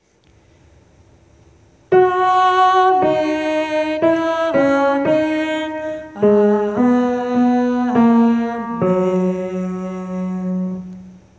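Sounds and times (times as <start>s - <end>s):
alto voice singing: 1.9s - 11.2s.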